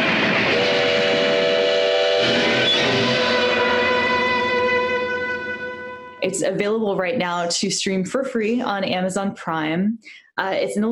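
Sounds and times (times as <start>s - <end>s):
train whistle: 0.0s - 6.2s
speech: 6.2s - 10.9s.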